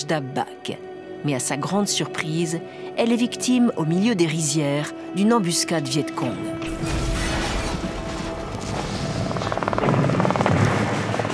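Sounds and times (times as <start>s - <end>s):
speech: 0.0s - 7.1s
dense rumbling helicopter engine drone: 7.6s - 11.3s
helicopter rotor chopping: 7.8s - 11.3s.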